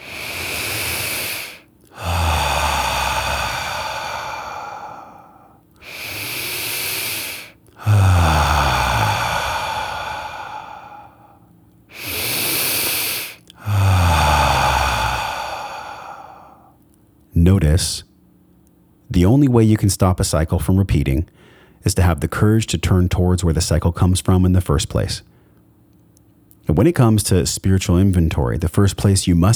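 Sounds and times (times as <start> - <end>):
deep breathing: 0.0 - 16.8, 21.3 - 21.8
speech: 17.6 - 18.1, 19.1 - 25.3, 26.7 - 29.5.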